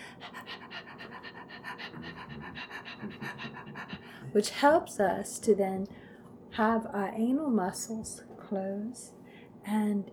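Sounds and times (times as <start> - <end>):
rapid forceful breathing in a breath of fire exercise: 0.0 - 4.3
speech: 4.4 - 6.0, 6.6 - 10.1.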